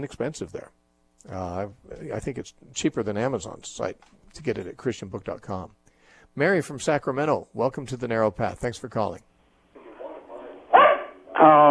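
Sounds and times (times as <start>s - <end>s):
speech: 0.0s - 9.3s, 11.4s - 11.6s
dog barking over a caller's phone line: 9.8s - 11.6s.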